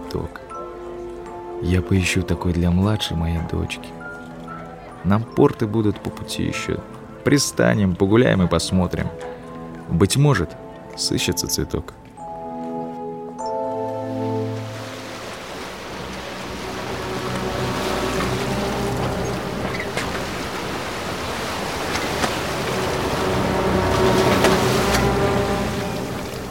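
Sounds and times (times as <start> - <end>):
speech: 0.1 - 0.4, 1.6 - 4.0, 5.0 - 9.3, 9.9 - 12.1
stormy sea waves roaring around a ship: 13.5 - 26.4
low droning tone: 15.5 - 26.4.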